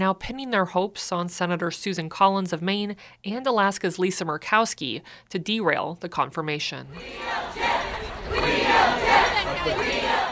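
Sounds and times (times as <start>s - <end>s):
speech: 0.0s - 7.7s
constant noise: 0.0s - 10.3s
large outdoor protest crowd chanting in unison: 6.9s - 10.3s.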